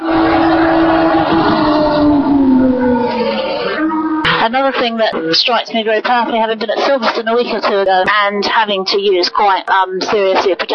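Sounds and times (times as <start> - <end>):
McLaren Honda racing car engine passing on a hill climb: 0.0 - 4.2
speech: 4.7 - 10.7.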